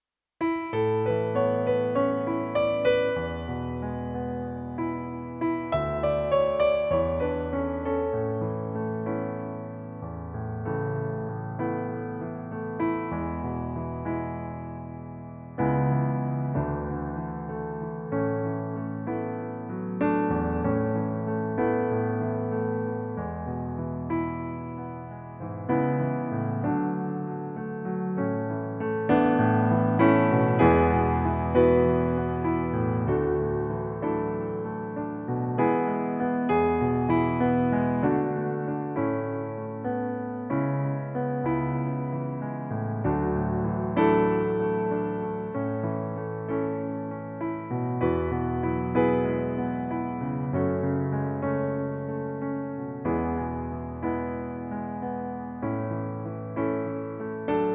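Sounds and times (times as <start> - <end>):
piano piece in A major: 0.4 - 57.7.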